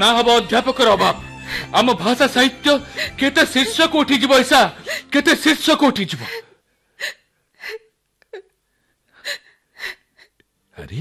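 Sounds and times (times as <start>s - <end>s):
speech: 0.0s - 7.2s, 10.8s - 10.9s
person crying in sobbing, gasping breaths: 0.7s - 1.9s, 2.6s - 5.4s, 6.1s - 8.6s.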